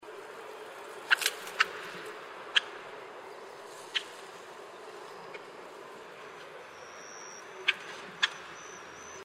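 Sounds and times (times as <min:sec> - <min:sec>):
Taiwan nightjar: 0:00.6 - 0:09.2.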